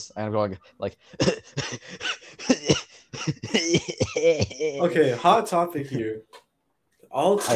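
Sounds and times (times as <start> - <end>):
speech: 0.0 - 6.4, 7.1 - 7.5
strained coughs held back in the throat: 1.1 - 4.3.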